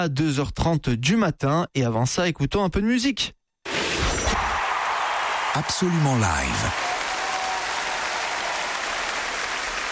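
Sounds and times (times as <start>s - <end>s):
speech: 0.0s - 3.4s, 5.6s - 6.9s
large concert crowd applauding impatiently: 4.5s - 9.9s.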